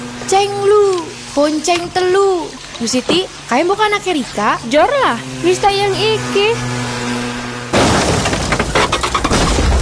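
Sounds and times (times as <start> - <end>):
speech: 0.3 - 6.8
glass breaking and shattering: 7.7 - 9.8
motorcycle accident crash: 7.7 - 9.8.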